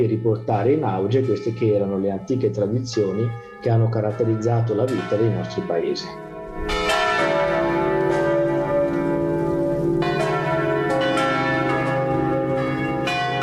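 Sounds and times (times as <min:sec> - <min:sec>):
speech: 0:00.0 - 0:06.9
eight large swinging bells of a provost church in Grosio Italy: 0:00.0 - 0:13.4.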